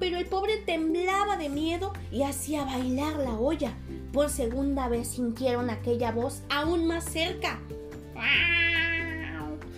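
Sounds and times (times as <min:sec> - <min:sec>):
speech: 0:00.2 - 0:08.7
cat meowing: 0:08.2 - 0:09.7.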